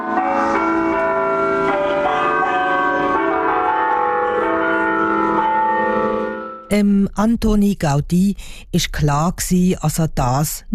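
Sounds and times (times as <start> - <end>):
church bells ringing in a peal in Barcelona: 0.0 - 6.7
speech: 6.7 - 10.7.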